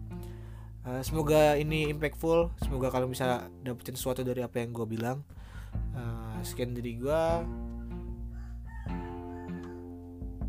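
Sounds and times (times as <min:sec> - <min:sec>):
speech: 0:00.8 - 0:07.6
rooster crowing: 0:07.8 - 0:10.0.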